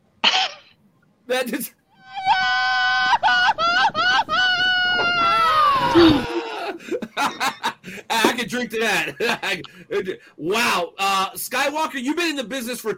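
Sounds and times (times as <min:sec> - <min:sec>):
speech: 0:01.3 - 0:01.8, 0:08.1 - 0:12.9
Mexican grito yell: 0:01.9 - 0:06.8
laughter: 0:02.1 - 0:10.1.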